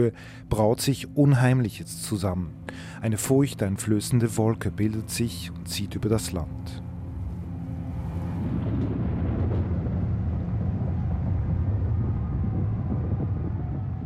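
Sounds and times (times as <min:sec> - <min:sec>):
speech: 0:00.0 - 0:06.9
roaring storm wind over Switzerland: 0:06.8 - 0:14.0.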